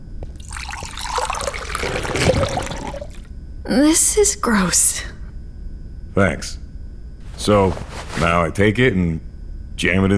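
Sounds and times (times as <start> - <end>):
thick protein liquid glugging into a narrow tube: 0.4 - 3.3
speech: 3.7 - 5.1, 6.2 - 6.6, 7.4 - 9.2, 9.8 - 10.1.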